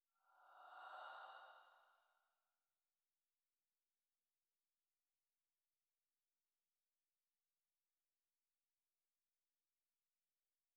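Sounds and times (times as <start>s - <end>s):
magical spirit breath whoosh: 0.2s - 2.1s.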